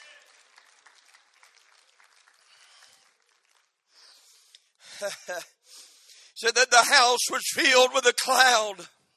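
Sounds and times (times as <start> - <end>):
congregation clapping: 0.0 - 4.4
speech: 5.0 - 5.6, 6.4 - 9.0
person speaking loudly: 6.4 - 8.9.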